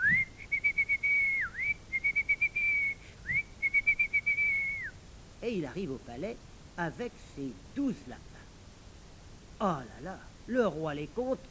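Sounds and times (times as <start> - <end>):
person whistling a calling tune to call animals: 0.0 - 5.0
speech: 5.4 - 8.3, 9.6 - 11.4.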